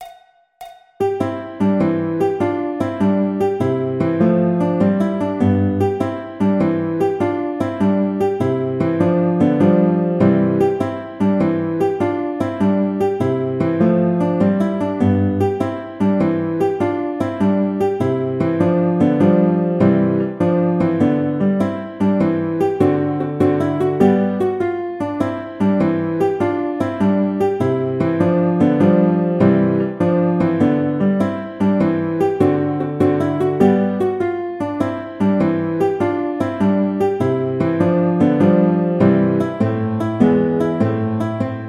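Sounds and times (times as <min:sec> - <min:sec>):
classical guitar playing an andante: 0:01.0 - 0:41.6.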